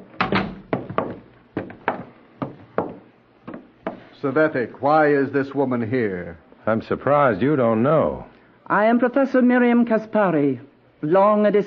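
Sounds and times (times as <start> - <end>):
door closing: 0.0 - 1.0
dull wooden thuds: 0.2 - 4.1
speech: 4.2 - 11.6.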